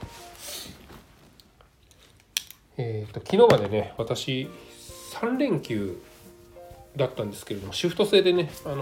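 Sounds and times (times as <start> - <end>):
clothes fabric rustling while getting dressed: 0.0 - 1.4, 4.4 - 8.7
speech: 2.8 - 6.1, 7.0 - 8.7.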